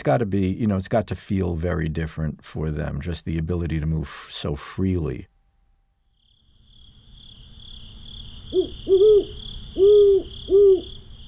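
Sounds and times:
speech: 0.0s - 5.3s
insects or night noise: 6.1s - 11.2s
owl hooting at night: 8.4s - 11.2s.

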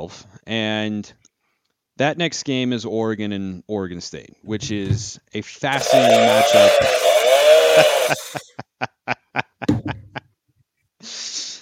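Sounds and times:
speech: 0.0s - 1.2s, 2.0s - 7.1s
small toy chainsaw revving: 5.7s - 8.4s
laughter: 7.5s - 10.2s.

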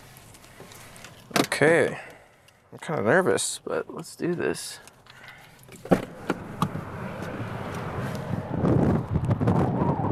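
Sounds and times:
speech: 1.6s - 2.1s, 2.7s - 4.9s, 5.7s - 6.0s
strong wind gusting against microphone at a bridge: 6.2s - 10.0s.

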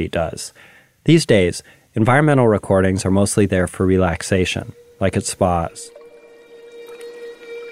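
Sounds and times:
speech: 0.0s - 6.0s
humpback whale singing an eerie moan: 4.1s - 7.7s.

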